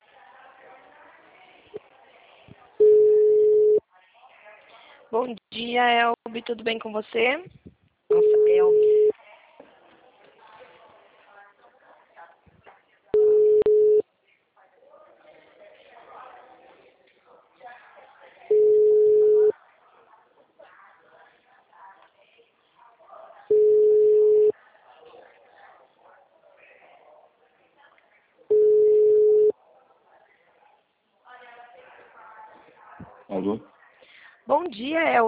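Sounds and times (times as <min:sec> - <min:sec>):
quiet talk: 0:00.0 - 0:06.5, 0:07.4 - 0:35.2
telephone ringback tone on an unanswered call: 0:02.8 - 0:03.8, 0:08.1 - 0:09.1, 0:13.2 - 0:14.0, 0:18.5 - 0:19.5, 0:23.5 - 0:24.5, 0:28.5 - 0:29.5
speech: 0:05.1 - 0:08.9.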